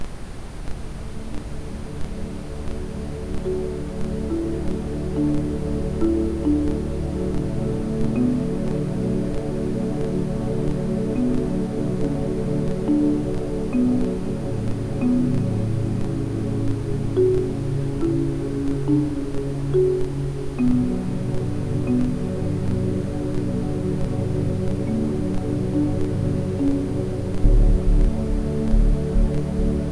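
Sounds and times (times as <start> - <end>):
ambient sound: 1.0 - 29.8
lullaby music: 1.7 - 29.8
Rife frequency tones: 27.4 - 29.8.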